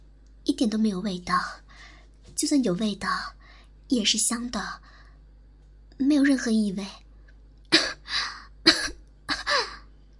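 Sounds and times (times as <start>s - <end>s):
speech: 0.6s - 5.0s, 6.0s - 7.0s
person coughing with rasping tail: 8.7s - 9.8s.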